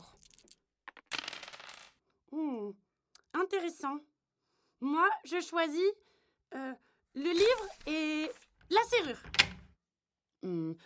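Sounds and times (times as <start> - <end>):
dice rolling on a table: 0.0 - 2.0
speech: 3.5 - 4.2, 4.8 - 9.5, 10.4 - 10.8.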